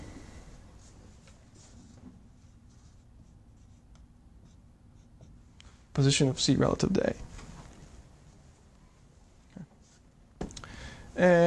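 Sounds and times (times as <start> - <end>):
scratching of writing during an engineering lecture: 2.4 - 5.4
speech: 6.0 - 7.3.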